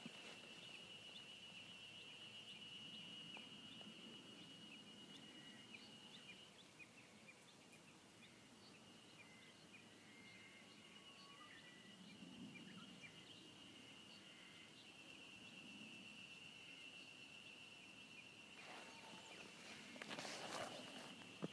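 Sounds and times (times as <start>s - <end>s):
Ezo harusemi cicada song near Mount Tanzawa Japan: 0.0s - 7.3s, 7.9s - 21.5s
rustling: 18.6s - 21.5s.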